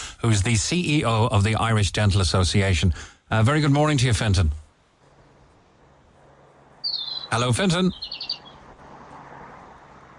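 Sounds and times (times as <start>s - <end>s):
faint steady outdoor hiss: 0.0s - 10.1s
speech: 0.2s - 4.6s, 7.3s - 8.2s
high bird chirps: 6.8s - 8.7s.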